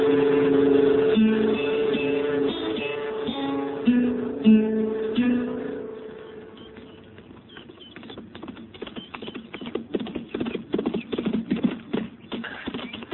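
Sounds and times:
musical tone: 0.1 - 7.1
horse hooves clip-clopping in a walking rhythm: 6.4 - 13.1.

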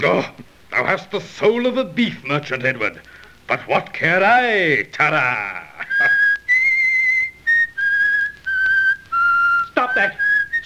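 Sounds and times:
speech: 0.0 - 5.7, 10.0 - 10.6
man whistling a tune: 5.8 - 10.6.

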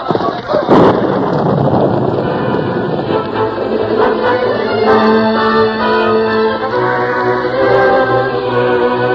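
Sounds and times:
thunder crack: 0.0 - 5.4
rolling storm rumble: 0.0 - 9.1
sustained droning tones: 1.0 - 9.1.

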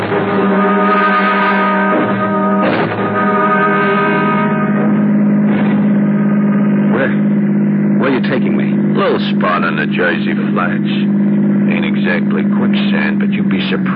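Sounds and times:
car engine running and pulling away: 0.0 - 13.9
mechanical clunks: 4.7 - 7.4
speech: 9.8 - 11.0, 12.1 - 13.9.

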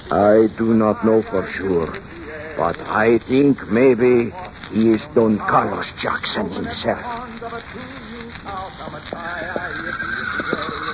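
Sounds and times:
steady hissing background: 0.0 - 10.9
speech: 0.1 - 10.7
horses neighing and whinnying: 9.3 - 10.9.

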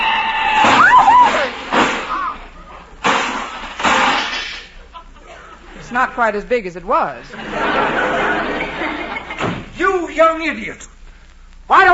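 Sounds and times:
big black touring car crashing: 0.5 - 2.4, 3.0 - 4.7
laughter: 4.8 - 6.2, 7.2 - 9.5
speech: 6.0 - 8.2, 9.8 - 10.9, 11.7 - 11.9.

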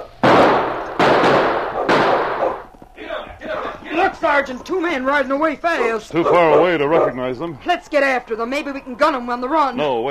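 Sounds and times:
loud gunshots from a gully with rumbling echo: 0.0 - 2.7
speech: 4.1 - 10.0.

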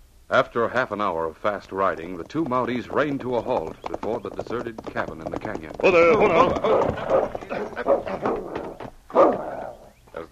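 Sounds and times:
speech: 0.3 - 8.5
dog growling roughly: 6.2 - 9.9
dog barking: 6.6 - 9.8.

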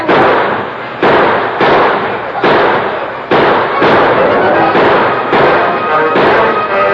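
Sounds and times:
gunshots in an exchange of gunfire between a sheriff, deputies and outlaws: 0.0 - 6.9.

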